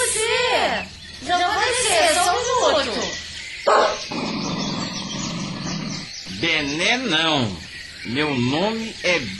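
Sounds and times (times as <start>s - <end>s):
hiss: 0.0s - 9.3s
purebred dog barking: 3.7s - 4.1s
speech: 6.6s - 9.3s.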